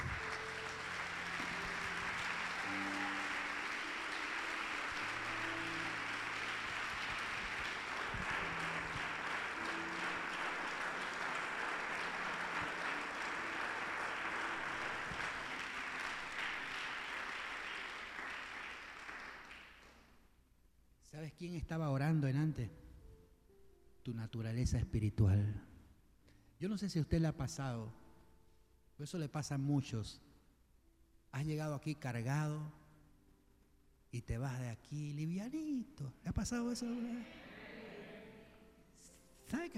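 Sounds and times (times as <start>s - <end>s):
large crowd applauding: 0.0s - 20.1s
speech: 21.1s - 22.8s, 24.0s - 25.7s, 26.6s - 28.0s, 29.0s - 30.3s, 31.3s - 32.8s, 34.1s - 37.5s, 39.5s - 39.7s.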